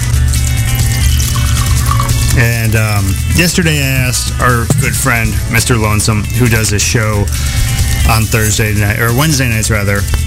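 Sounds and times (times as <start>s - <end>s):
whiskey pouring into a glass: 0.6s - 3.2s
speech: 2.4s - 10.2s.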